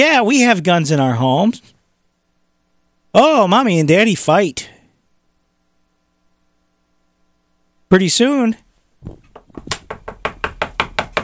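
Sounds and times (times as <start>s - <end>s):
speech: 0.0s - 1.7s, 3.1s - 4.7s, 7.9s - 9.7s
knocking on a door: 9.0s - 11.2s.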